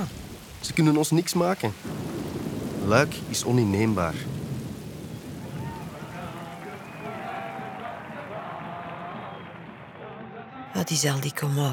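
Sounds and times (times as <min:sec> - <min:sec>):
speech: 0:00.0 - 0:02.1, 0:02.8 - 0:04.3, 0:10.8 - 0:11.7
deep continuous rumble of thunder: 0:00.0 - 0:09.9
steady rain: 0:00.0 - 0:11.7.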